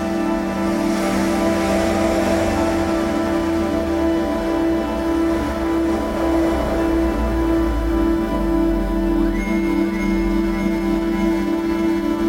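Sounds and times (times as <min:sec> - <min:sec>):
humming ambient drone: 0:00.0 - 0:12.2
cars whooshing past: 0:00.2 - 0:09.1.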